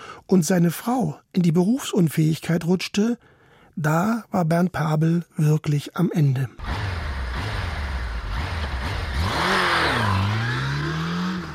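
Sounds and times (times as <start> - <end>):
speech: 0.3 - 6.8
Honda CBF 1000 motorcycle engine idling and revving: 6.6 - 11.5.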